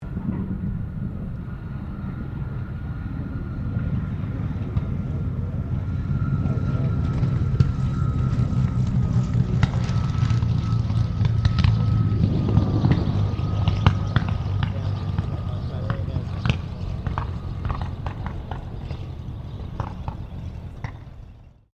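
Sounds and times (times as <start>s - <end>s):
CAC CA-18 Mustang Mk23 aircraft landing: 0.0s - 21.7s.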